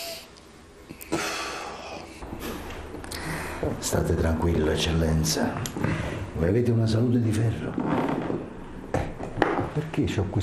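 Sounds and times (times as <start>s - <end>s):
deep breath in and out during a medical examination: 1.0s - 3.8s, 5.8s - 6.4s
speech: 3.6s - 8.2s, 9.8s - 10.4s.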